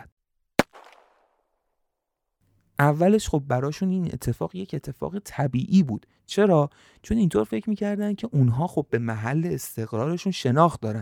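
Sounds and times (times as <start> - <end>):
gunshot: 0.6 - 1.3
speech: 2.8 - 11.0.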